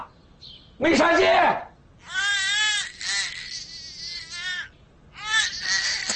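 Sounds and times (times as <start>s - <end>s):
speech: 0.8s - 1.7s
infant wailing with a high wavering cry: 2.0s - 6.1s.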